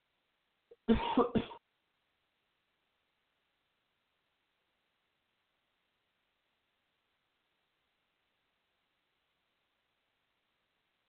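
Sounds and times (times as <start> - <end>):
harsh coughing fit: 0.8 - 1.6.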